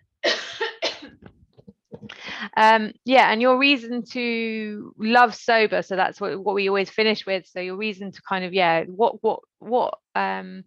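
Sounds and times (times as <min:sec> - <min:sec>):
harsh coughs: 0:00.2 - 0:01.2
soft throaty sounds: 0:00.9 - 0:02.5
speech: 0:02.4 - 0:10.6.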